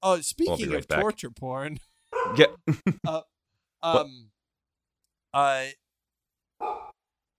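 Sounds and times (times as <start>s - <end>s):
speech: 0.0s - 4.3s, 5.3s - 5.8s, 6.6s - 6.9s
dog barking: 2.1s - 2.6s, 6.6s - 7.0s.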